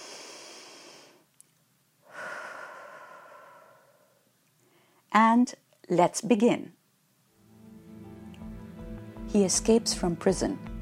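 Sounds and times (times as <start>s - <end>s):
deep breath inhaled and exhaled slowly: 0.0s - 1.3s, 2.0s - 5.1s
speech: 5.1s - 6.8s, 9.3s - 10.7s.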